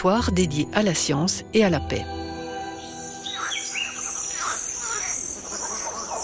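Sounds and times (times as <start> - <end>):
speech: 0.0 - 2.2
steady high insect drone in French Guiana rainforest: 2.3 - 6.2
chirps and whistling bird calls in French Guiana rainforest: 2.6 - 6.2
frogs in French Guiana rainforest: 2.8 - 6.2
monkeys in French Guiana rainforest: 3.2 - 6.2.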